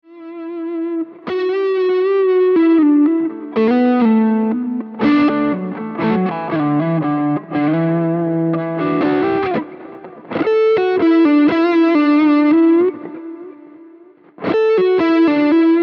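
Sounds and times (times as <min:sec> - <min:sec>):
Fat Strat electric guitar: 0:00.0 - 0:15.8.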